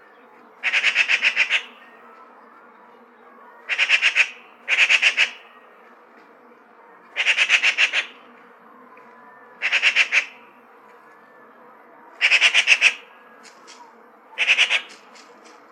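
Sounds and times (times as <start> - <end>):
Eurasian magpie chattering: 0.6 - 1.7, 3.7 - 5.4, 7.2 - 8.2, 9.6 - 10.4, 12.2 - 13.1, 14.4 - 15.2.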